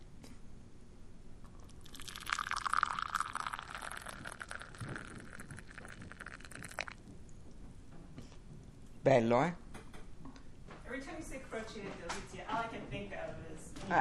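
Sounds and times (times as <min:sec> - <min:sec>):
coffee pouring into a cup: 0:01.5 - 0:07.0
speech: 0:09.1 - 0:09.6, 0:11.3 - 0:13.9.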